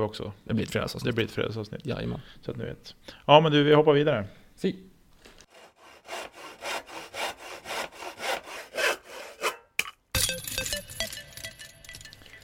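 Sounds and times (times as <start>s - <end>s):
speech: 0.0s - 4.9s
hand saw sawing wood: 5.5s - 9.7s
bright clinking ringing noise: 10.2s - 12.4s.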